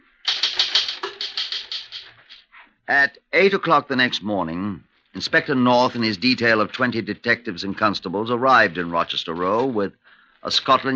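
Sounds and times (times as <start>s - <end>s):
typewriter keys clacking as a document is typed: 0.2s - 2.4s
speech: 2.9s - 10.9s.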